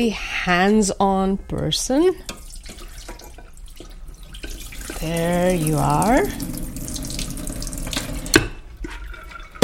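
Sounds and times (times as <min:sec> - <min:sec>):
speech: 0:00.0 - 0:02.4, 0:05.0 - 0:06.6
water running from a tap into a cooking pot: 0:02.2 - 0:09.6.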